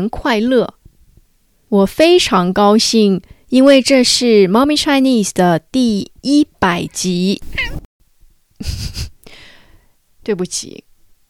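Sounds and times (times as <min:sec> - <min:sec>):
speech: 0:00.0 - 0:00.8, 0:01.7 - 0:07.8, 0:08.6 - 0:09.1, 0:10.3 - 0:10.9
cat meowing: 0:07.4 - 0:07.9.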